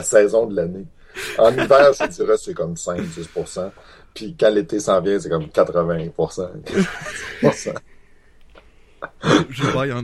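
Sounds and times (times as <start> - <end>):
speech: 0.0 - 7.9, 9.0 - 10.0
person yawning: 1.2 - 1.7
laughter: 1.2 - 2.3, 3.0 - 3.8, 6.7 - 7.8.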